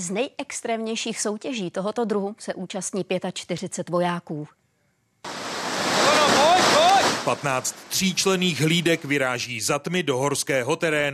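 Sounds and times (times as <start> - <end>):
speech: 0.0 - 4.6, 7.2 - 11.1
rushing river water forded by soldiers in the Krkonoše mountains: 5.3 - 9.0.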